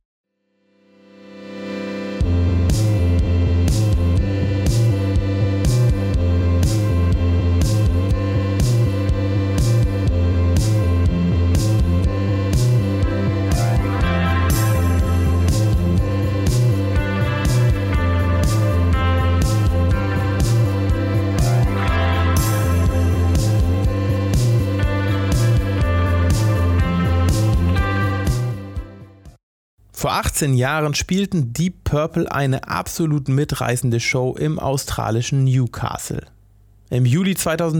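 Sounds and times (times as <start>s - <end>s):
lo-fi electronic-tinged 90s slacker rock with guitars and synths: 1.1s - 29.4s
speech: 30.0s - 37.7s.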